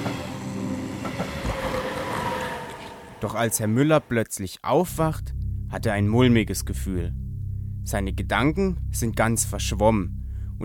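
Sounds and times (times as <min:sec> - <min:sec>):
train passing through a railway station: 0:00.0 - 0:03.2
speech: 0:03.2 - 0:07.2, 0:07.9 - 0:10.6.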